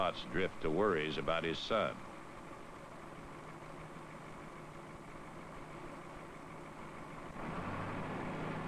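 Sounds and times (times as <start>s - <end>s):
speech: 0.0s - 2.1s
heavy machine engine idling while warming up: 0.0s - 8.6s.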